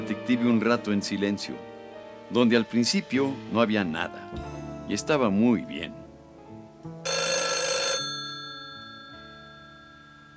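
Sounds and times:
speech: 0.1s - 1.7s, 2.3s - 6.0s
telephone bell ringing: 7.1s - 10.3s.

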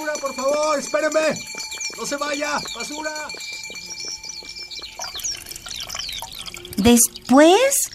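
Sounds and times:
speech: 0.2s - 3.7s, 6.8s - 7.9s
faint high chirps: 1.6s - 7.9s
water pouring from a large jug: 2.7s - 7.9s.

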